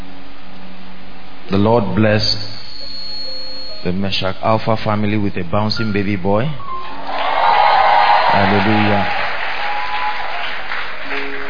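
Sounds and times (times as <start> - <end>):
speech: 1.5 - 2.5, 3.8 - 7.0, 8.4 - 9.2
church congregation clapping at a baby dedication service: 6.8 - 11.4.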